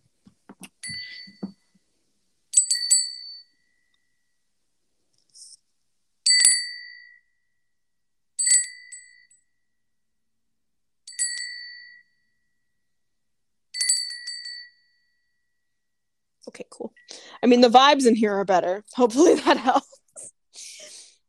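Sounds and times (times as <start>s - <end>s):
small bell struck for sound cleansing: 0.8s - 1.7s, 2.5s - 4.4s, 6.2s - 7.7s, 8.4s - 9.8s, 11.1s - 12.9s, 13.7s - 15.9s
speech: 16.4s - 20.3s.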